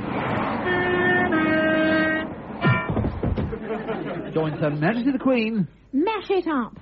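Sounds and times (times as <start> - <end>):
train rumbling past: 0.0 - 4.8
train horn blaring a two-part chord: 0.4 - 3.1
laughter: 3.3 - 5.2
speech: 4.4 - 6.8.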